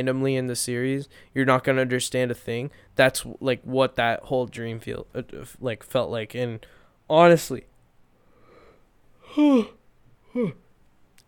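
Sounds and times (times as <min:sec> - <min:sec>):
speech: 0:00.0 - 0:07.7, 0:09.3 - 0:10.6
person yawning: 0:09.2 - 0:10.7.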